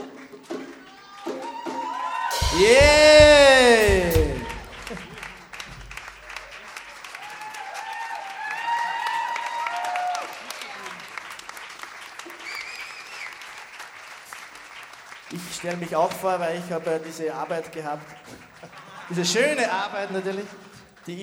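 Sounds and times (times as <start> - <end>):
audience applauding at a live music performance: 0.0 - 16.6
audience whooping cheers: 0.9 - 5.2, 7.1 - 11.0
scattered shouts from audience: 1.1 - 5.0
speech: 2.6 - 3.3, 15.7 - 18.4, 19.1 - 21.2
laughter: 17.9 - 20.8.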